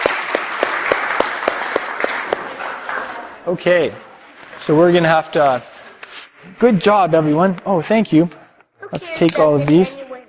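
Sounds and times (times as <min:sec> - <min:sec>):
audience applauding: 0:00.0 - 0:03.4
speech: 0:03.4 - 0:04.1, 0:04.7 - 0:05.7, 0:06.5 - 0:10.0.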